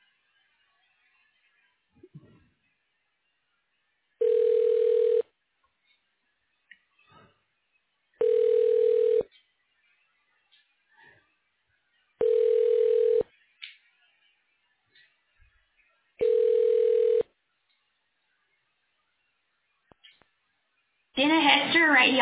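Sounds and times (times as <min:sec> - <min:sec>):
telephone ringback tones while a call is transferred to voicemail: 0:04.2 - 0:05.2, 0:08.2 - 0:09.2, 0:12.2 - 0:13.2, 0:16.2 - 0:17.3
speech: 0:21.2 - 0:22.2.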